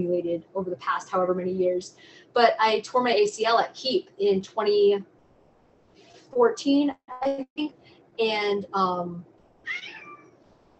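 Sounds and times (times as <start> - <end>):
speech: 0.0 - 5.1, 6.3 - 10.0
domestic cat meowing: 9.7 - 10.3.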